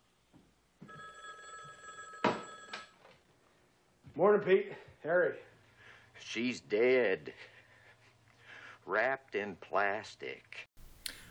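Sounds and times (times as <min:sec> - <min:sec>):
telephone bell ringing: 0:00.8 - 0:03.1
speech: 0:04.2 - 0:05.5, 0:06.2 - 0:07.5, 0:08.8 - 0:10.6.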